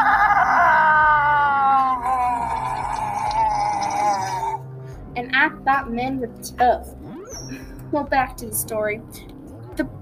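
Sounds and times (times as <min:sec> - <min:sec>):
man screaming in fright: 0:00.0 - 0:04.6
speech: 0:05.7 - 0:10.0.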